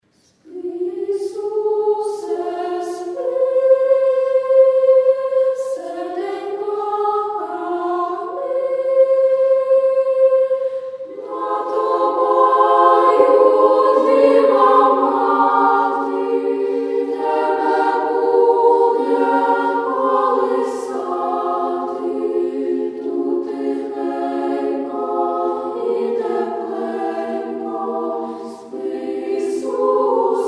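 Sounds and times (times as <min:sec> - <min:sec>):
children's choir singing: 0:00.4 - 0:30.4.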